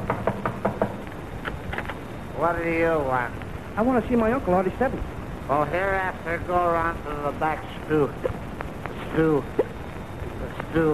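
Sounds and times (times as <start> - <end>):
knocking on a wooden door: 0.0 - 1.0
speech: 2.4 - 8.4, 9.1 - 9.6, 10.7 - 10.9.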